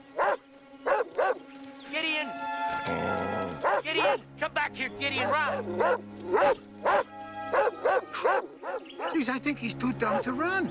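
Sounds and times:
Doberman guard dog barking: 0.2s - 1.4s, 3.6s - 4.2s, 5.3s - 9.2s
speech: 2.2s - 3.2s, 3.8s - 7.0s, 8.2s - 10.6s.

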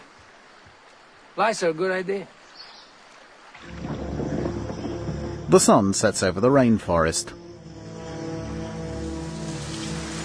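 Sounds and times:
steady rain falling at night: 0.0s - 10.2s
speech: 1.4s - 2.4s, 5.5s - 7.4s
boat engine droning: 3.6s - 10.2s.

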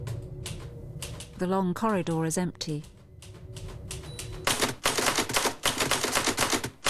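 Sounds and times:
speech: 1.4s - 3.0s
typewriter keys clacking: 3.2s - 6.8s.

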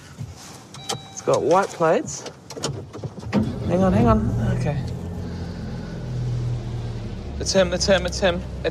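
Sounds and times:
speech: 1.2s - 2.4s, 3.7s - 4.9s, 7.4s - 8.7s
Mercedes car engine starting and running: 2.4s - 8.7s.

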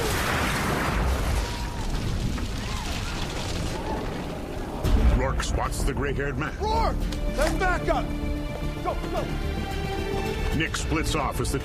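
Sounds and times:
armored truck exploding: 0.0s - 4.8s
speech: 5.4s - 9.6s, 10.5s - 11.6s.

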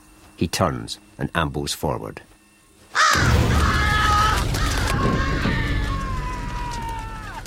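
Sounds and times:
speech: 0.4s - 2.3s
many crows cawing and squawking: 2.9s - 7.4s.

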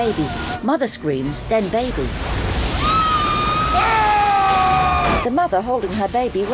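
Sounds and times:
speech: 0.0s - 2.7s, 3.7s - 4.1s, 5.2s - 6.5s
torrent of water gushing through a ceiling into ant tunnels: 1.8s - 5.3s.

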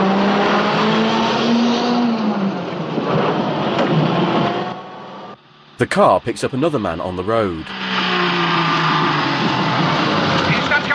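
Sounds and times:
tank bearing Iron Cross insignia roaring off at night: 0.0s - 10.9s
speech: 5.8s - 8.0s.

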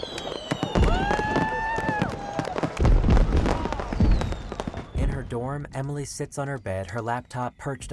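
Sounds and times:
fireworks bursting overhead with cracks and booms: 0.0s - 5.6s
speech: 5.6s - 7.9s.

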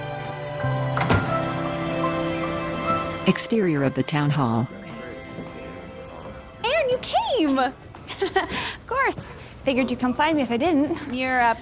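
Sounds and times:
steady sustained musical hum: 0.0s - 8.5s
door opening with clunks and a soft thump: 0.9s - 1.5s
speech: 3.3s - 4.8s, 7.0s - 11.5s.

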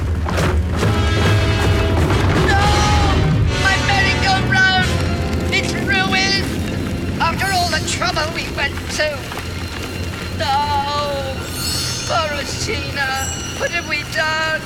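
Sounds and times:
merry-go-round ride exploding in a shower of sparks: 0.0s - 11.5s
crashing debris: 0.0s - 14.6s
high whistling, squealing tones: 1.7s - 14.6s
person speaking: 2.5s - 6.6s, 7.2s - 9.3s, 10.4s - 14.6s.

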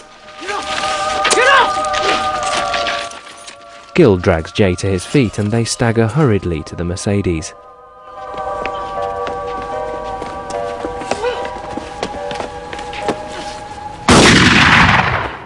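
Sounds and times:
steady humming drone: 0.0s - 14.1s
speech: 4.0s - 7.7s
gunshots in a street: 14.1s - 15.4s
loud blast: 14.1s - 15.4s.

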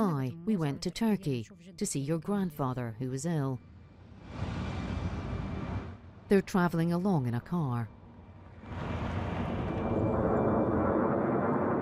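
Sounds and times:
speech: 0.2s - 3.7s, 6.3s - 8.0s
aircraft flying over a city during a military air offensive: 3.6s - 6.9s, 7.8s - 11.8s.

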